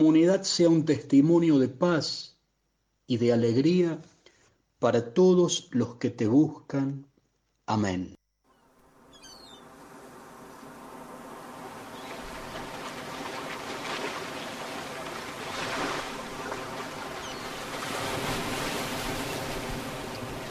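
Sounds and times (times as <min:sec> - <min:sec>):
speech: 0:00.0 - 0:02.3, 0:03.1 - 0:04.1, 0:04.8 - 0:07.1, 0:07.7 - 0:08.2
sea waves washing: 0:08.8 - 0:20.4.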